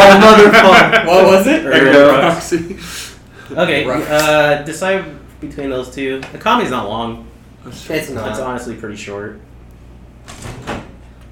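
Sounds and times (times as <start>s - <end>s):
laughter: 0.0s - 3.1s
low hum: 0.0s - 11.3s
speech: 0.2s - 9.5s
door being pushed open: 10.2s - 11.0s.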